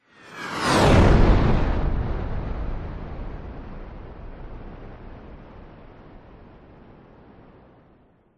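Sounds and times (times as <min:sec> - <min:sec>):
fighter jet passing by low at extreme speed: 0:00.0 - 0:06.0.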